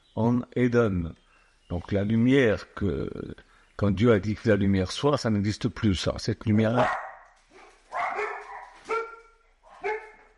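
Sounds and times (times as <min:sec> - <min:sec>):
speech: 0:00.2 - 0:07.0
dogs barking hard and loud: 0:06.8 - 0:10.3.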